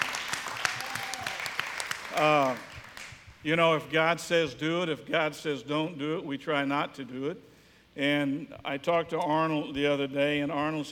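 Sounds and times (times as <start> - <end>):
church audience applause: 0.0 - 3.2
speech: 2.2 - 2.7, 3.4 - 10.8.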